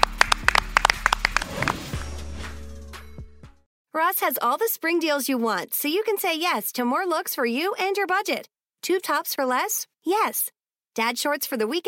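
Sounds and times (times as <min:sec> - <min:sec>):
hands clapping: 0:00.0 - 0:02.0
speech: 0:04.0 - 0:11.8.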